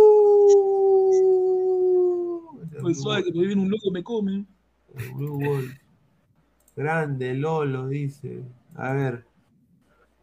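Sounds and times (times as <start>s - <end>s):
person imitating a long wolf howl: 0.0s - 2.7s
speech: 2.9s - 5.8s, 6.8s - 9.3s.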